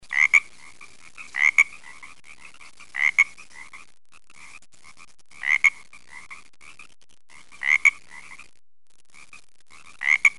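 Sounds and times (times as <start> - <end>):
Pacific tree frog calling: 0.1 - 3.8, 5.4 - 8.5, 9.2 - 10.3.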